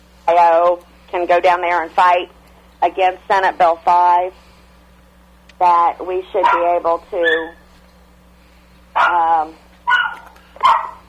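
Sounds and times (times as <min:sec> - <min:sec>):
speech: 0:00.4 - 0:04.4, 0:05.6 - 0:07.6, 0:09.0 - 0:09.6
dog barking: 0:06.4 - 0:07.6, 0:09.0 - 0:11.0.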